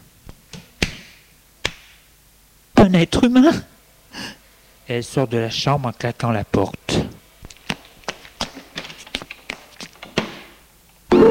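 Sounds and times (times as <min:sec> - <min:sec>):
slap across the face during a heated domestic quarrel: 0:00.3 - 0:02.0
speech: 0:02.8 - 0:03.7, 0:04.9 - 0:07.2.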